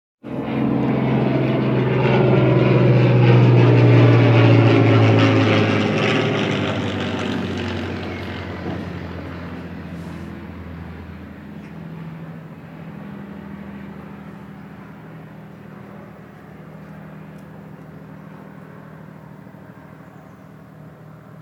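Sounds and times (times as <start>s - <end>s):
historic propeller aircraft roaring overhead: 0.2s - 21.3s.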